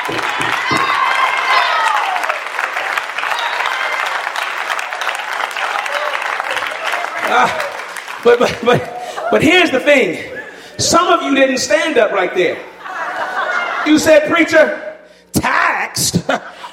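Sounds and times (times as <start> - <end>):
scattered cheers and whoops: 0.0 - 8.0, 8.7 - 9.5
large indoor crowd applauding: 0.0 - 10.0
laughter: 6.6 - 10.8, 12.4 - 14.3, 16.0 - 16.7
speech: 8.2 - 12.7, 13.8 - 14.8.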